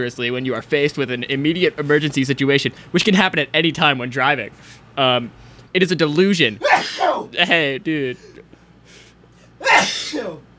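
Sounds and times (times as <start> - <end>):
speech: 0.0 - 8.4, 9.6 - 10.5
loud explosive sneeze: 6.6 - 7.3, 9.6 - 10.4
breathy exhale: 8.8 - 9.6.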